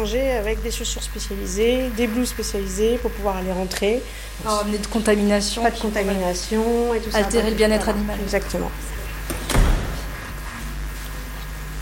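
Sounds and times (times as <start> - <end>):
speech: 0.0 - 8.9
steady low ventilation hum: 0.0 - 11.8
airlock door of an animal facility opening: 9.2 - 10.8.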